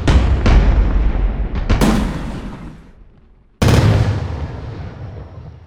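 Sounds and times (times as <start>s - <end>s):
heavy hit special effect: 0.2s - 4.1s.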